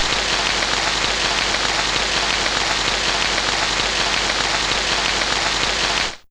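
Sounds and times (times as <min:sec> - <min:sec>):
rain sound from a Fairlight CMI IIe synthesizer: 0:00.0 - 0:06.2.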